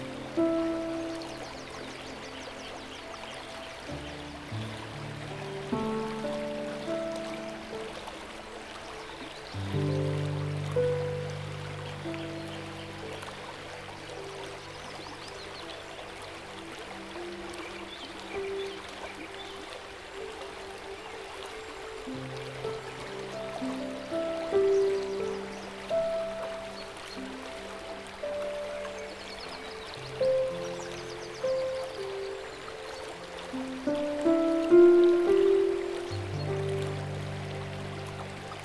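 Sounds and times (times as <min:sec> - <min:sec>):
gentle piano music with sustained low chords: 0:00.0 - 0:38.6
steady soft rush of river water: 0:00.0 - 0:38.6.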